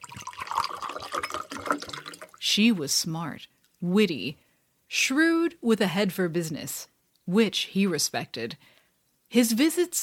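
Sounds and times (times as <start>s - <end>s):
liquid pouring into a glass: 0.0s - 2.4s
speech: 2.6s - 8.7s, 9.3s - 10.0s.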